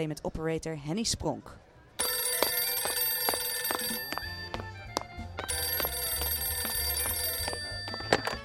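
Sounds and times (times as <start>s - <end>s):
speech: 0.0s - 1.6s
old-fashioned telephone bell ringing: 2.0s - 8.4s.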